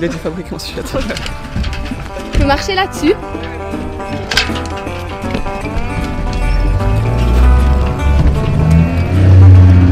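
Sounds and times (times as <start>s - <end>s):
speech: 0.0s - 1.7s, 2.4s - 3.4s
light clattering: 0.0s - 8.6s
Swedish-made boat motor starting: 4.1s - 9.9s.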